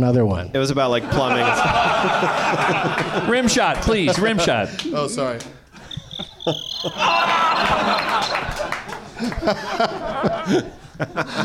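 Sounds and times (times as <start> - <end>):
speech: 0.0 - 5.6, 6.4 - 8.6, 9.2 - 11.4
people chuckling: 1.0 - 4.4, 5.7 - 11.4
people murmuring: 1.0 - 11.4
high steady cricket chirping: 5.6 - 8.6.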